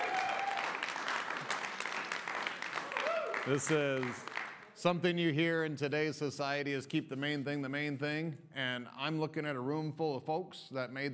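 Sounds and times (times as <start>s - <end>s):
congregation applauding during a Christmas church service: 0.0s - 4.8s
speech: 3.4s - 11.1s.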